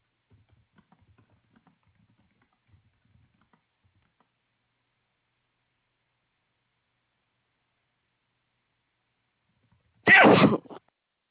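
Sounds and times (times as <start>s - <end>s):
single loud sneeze: 10.1s - 10.8s.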